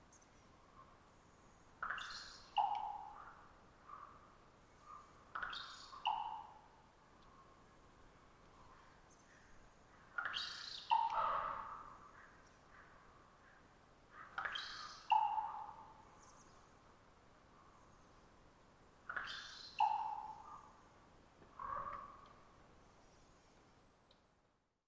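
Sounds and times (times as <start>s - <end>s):
faint steady background hiss: 0.0s - 24.8s
perched common raven giving pop calls, beak snaps and trilled twittering: 1.8s - 4.1s, 4.9s - 6.6s, 10.1s - 11.9s, 14.2s - 15.9s, 19.1s - 20.8s, 21.4s - 22.4s.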